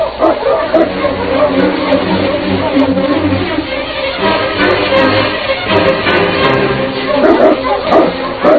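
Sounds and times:
sled dogs whimpering: 0.0s - 3.7s, 7.0s - 8.5s
pack of sled dogs barking and yipping: 0.0s - 8.5s.

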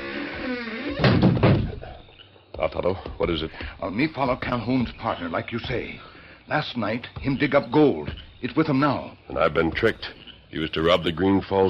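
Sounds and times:
faint creak of a door moving: 0.0s - 2.0s
door swinging shut with a solid thump: 0.6s - 2.0s
speech: 2.6s - 11.6s.

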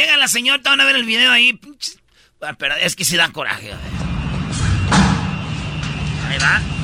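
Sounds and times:
speech: 0.0s - 4.0s, 6.3s - 6.8s
door being forced, slamming and thudding: 3.8s - 6.1s.

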